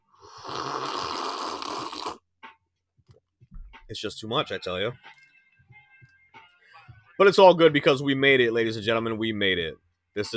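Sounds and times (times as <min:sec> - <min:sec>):
long loud slurping sip of tea: 0:00.1 - 0:02.2
brief softer mouth sounds: 0:00.2 - 0:02.2
speech: 0:03.9 - 0:05.2, 0:07.2 - 0:10.3.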